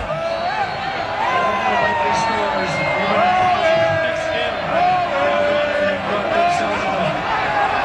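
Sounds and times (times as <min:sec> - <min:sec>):
big crowd of football fans cheering and shouting: 0:00.0 - 0:07.8.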